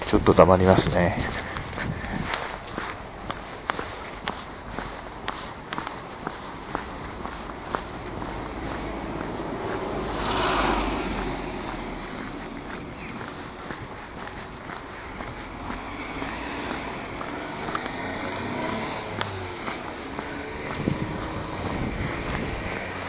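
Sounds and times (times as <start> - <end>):
faint wind: 0.0 - 23.0
walking footsteps outdoors: 0.0 - 23.0
speech: 0.1 - 1.4
cyclist whooshing past: 10.0 - 11.7.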